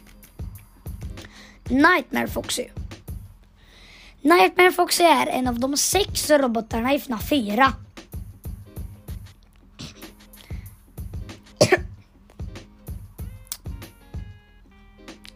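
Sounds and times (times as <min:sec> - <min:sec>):
steady rhythmic low thumping: 0:00.0 - 0:03.4, 0:05.4 - 0:14.4
speech: 0:01.7 - 0:02.8, 0:04.2 - 0:07.8
sharp cough: 0:09.8 - 0:10.2, 0:11.6 - 0:12.0
throat clearing: 0:09.8 - 0:10.2, 0:11.6 - 0:12.0.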